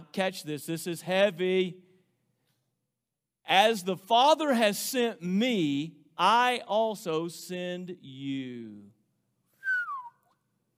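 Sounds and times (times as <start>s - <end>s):
speech: 0.1s - 1.8s, 3.5s - 9.0s
loud human whistle: 9.6s - 10.5s.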